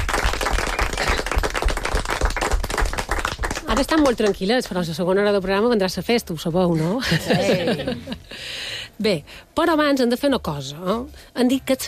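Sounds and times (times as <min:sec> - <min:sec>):
audience applause: 0:00.0 - 0:04.3
speech: 0:03.7 - 0:11.8
laughter: 0:06.9 - 0:08.4.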